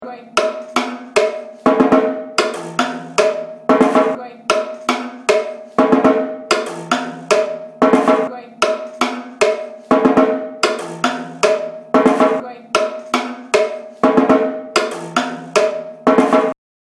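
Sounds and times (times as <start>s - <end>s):
surdo drum break: 0.3s - 16.6s.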